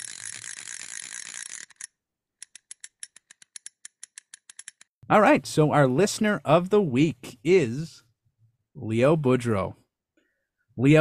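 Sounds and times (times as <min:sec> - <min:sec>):
spinning prize wheel clicking: 0:00.0 - 0:04.9
speech: 0:05.1 - 0:08.0, 0:08.8 - 0:09.8, 0:10.8 - 0:11.0.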